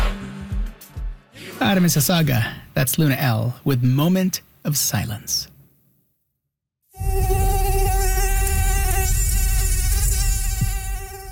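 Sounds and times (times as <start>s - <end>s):
speech: 1.6s - 5.5s
mosquito buzzing with a high steady whine: 6.9s - 11.3s.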